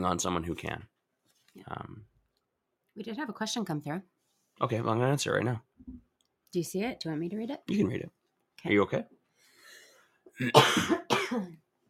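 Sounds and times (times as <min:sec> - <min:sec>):
speech: 0:00.0 - 0:01.0, 0:01.6 - 0:02.1, 0:03.0 - 0:09.2, 0:10.4 - 0:11.6
person coughing harshly: 0:10.4 - 0:11.6.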